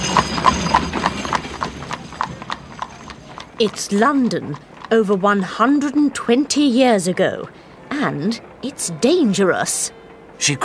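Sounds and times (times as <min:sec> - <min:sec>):
horse hooves clip-clopping on a foggy London street: 0:00.0 - 0:07.5
horse carriage wheels rumbling: 0:00.0 - 0:09.9
speech: 0:03.6 - 0:10.6.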